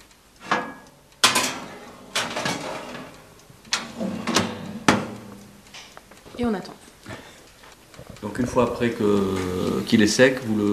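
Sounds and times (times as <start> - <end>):
oven door and tray clattering as saffron pistils go back into the oven: 0.4 - 5.9
speech: 6.4 - 6.8, 8.3 - 10.7.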